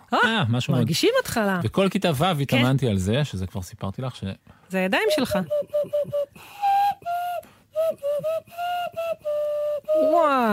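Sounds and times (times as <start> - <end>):
speech: 0.1 - 7.2, 7.8 - 10.5
whistle blown through cupped hands and thumbs playing a short tune: 5.1 - 10.5.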